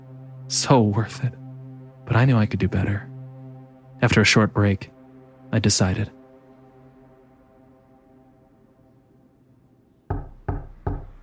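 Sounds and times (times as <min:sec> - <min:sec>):
speech: 0:00.5 - 0:01.4, 0:02.1 - 0:03.1, 0:04.0 - 0:04.9, 0:05.5 - 0:06.2
knocking on a door: 0:10.1 - 0:11.2.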